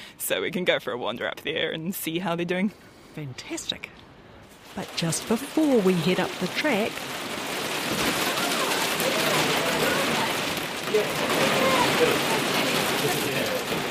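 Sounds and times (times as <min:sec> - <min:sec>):
speech: 0:00.3 - 0:04.0, 0:04.7 - 0:08.1, 0:10.9 - 0:12.4
heavy hail falling on Anchor Island in Fiordland: 0:04.6 - 0:13.8.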